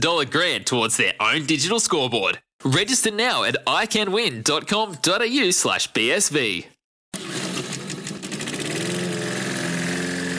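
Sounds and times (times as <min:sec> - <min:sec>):
speech: 0:00.0 - 0:07.2
lawn mower engine starting and revving: 0:07.1 - 0:10.3.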